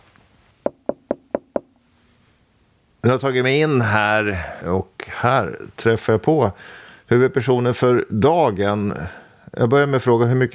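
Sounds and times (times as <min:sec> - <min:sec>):
firm knocking on a door: 0:00.6 - 0:01.7
speech: 0:03.0 - 0:10.5.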